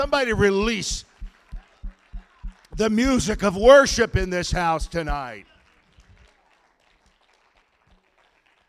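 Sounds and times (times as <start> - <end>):
speech: 0.0 - 1.1, 2.8 - 5.5
crowd clapping hands: 0.0 - 8.6.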